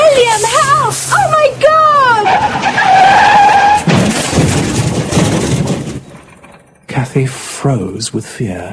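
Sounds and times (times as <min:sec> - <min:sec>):
bicycle skid squealing after front brake fails: 0:00.2 - 0:04.7
bicycle crashing into the side of a lorry: 0:02.3 - 0:07.3
debris rattling and clattering: 0:02.4 - 0:07.3
speech: 0:07.6 - 0:08.7.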